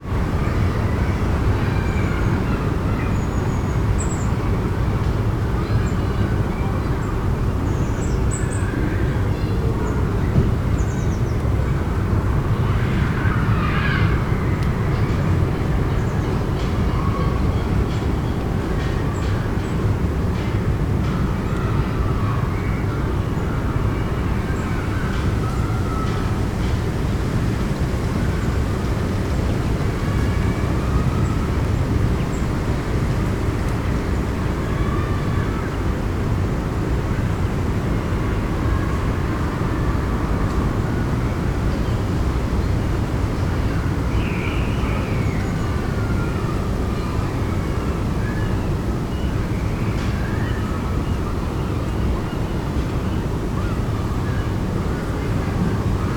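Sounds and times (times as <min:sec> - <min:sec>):
autumn wind in trees: 0:00.0 - 0:56.1
distant children in a school playground in a park: 0:00.0 - 0:56.1.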